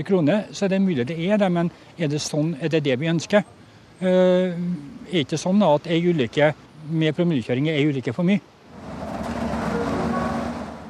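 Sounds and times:
speech: 0.0s - 8.5s
road noise inside a moving bus: 0.0s - 10.8s
city bus engine rumble: 8.6s - 10.8s.

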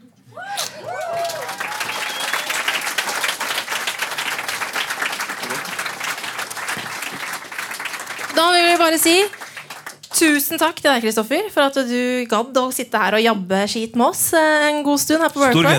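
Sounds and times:
whoops and voices: 0.3s - 2.6s
live audience applause: 0.6s - 10.4s
speech: 8.9s - 9.4s, 10.2s - 15.7s.

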